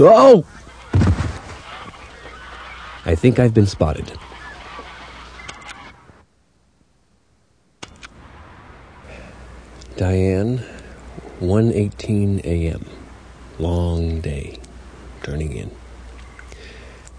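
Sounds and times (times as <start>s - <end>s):
speech: 0.0s - 0.6s, 3.0s - 4.3s, 10.0s - 10.7s, 11.4s - 13.0s, 13.6s - 14.6s, 15.2s - 15.8s
Canada geese honking: 0.0s - 6.2s
outdoor noise: 0.0s - 17.1s.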